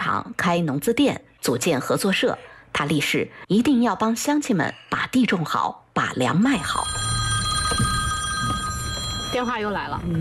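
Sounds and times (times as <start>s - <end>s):
speech: 0.0s - 7.1s, 7.7s - 7.9s, 9.4s - 10.2s
phone ringing with a bright electronic tone: 6.6s - 10.2s.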